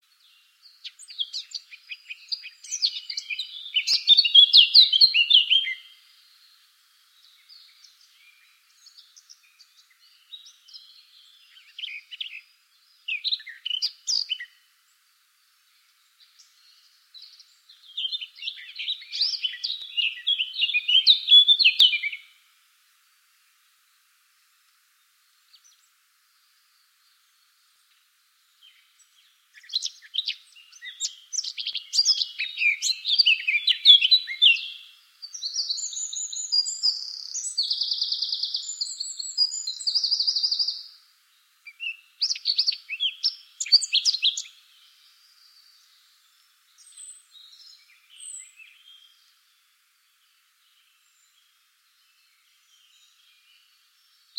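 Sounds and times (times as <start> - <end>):
blackcap singing: 0.2 - 6.0, 7.4 - 14.6, 16.2 - 22.3, 28.6 - 40.9, 41.6 - 45.0.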